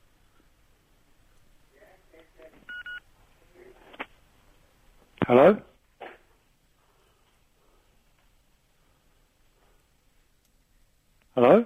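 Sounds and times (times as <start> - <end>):
electronic phone keypad dialing tones: 2.7 - 3.0
speech: 5.3 - 5.7.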